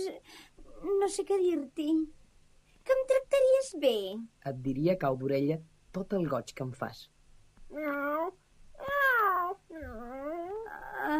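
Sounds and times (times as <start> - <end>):
speech: 0.0 - 2.2, 2.8 - 7.1, 7.7 - 9.0
kitten meowing: 7.8 - 10.4.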